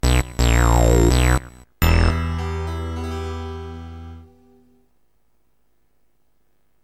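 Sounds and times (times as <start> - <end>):
video game over music: 0.0 - 4.7.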